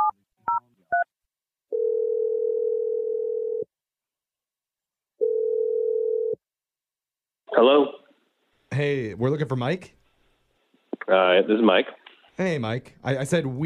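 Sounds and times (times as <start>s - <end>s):
telephone ringback tones: 1.7s - 3.6s, 5.2s - 6.4s
speech: 7.6s - 8.0s, 8.8s - 10.0s, 11.1s - 13.6s.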